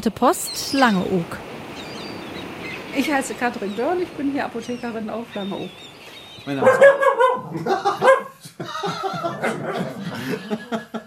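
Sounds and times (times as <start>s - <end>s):
speech: 0.0s - 1.5s, 3.0s - 11.0s
Lagotto Romagnolo Italian water dog barking: 6.5s - 8.4s
laughter: 7.5s - 11.0s.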